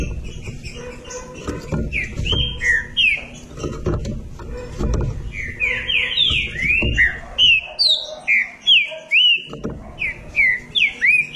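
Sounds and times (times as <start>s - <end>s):
green-winged saltator song of clear whistled notes: 0.0s - 3.6s, 5.2s - 11.3s.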